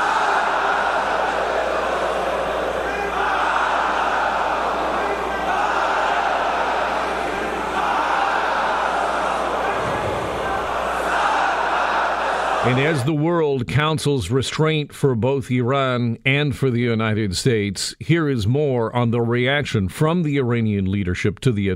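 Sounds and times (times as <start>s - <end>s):
worshippers chanting in unison at Friday prayers in Tehran: 0.0s - 13.0s
speech: 12.7s - 21.7s.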